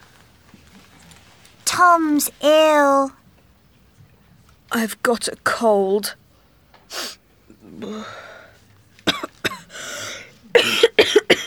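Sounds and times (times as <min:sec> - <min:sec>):
speech: 0:01.8 - 0:03.2, 0:04.7 - 0:06.2
breathy vocal sounds: 0:07.6 - 0:08.6
person coughing at the doctor's: 0:09.0 - 0:11.4.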